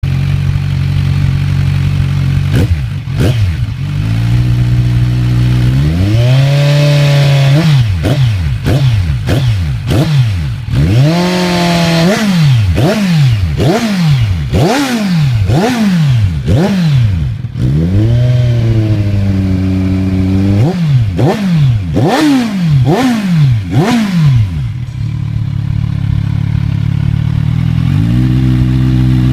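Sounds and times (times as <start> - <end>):
Kawasaki Z1000 motorcycle exhaust: 0.0 - 29.3.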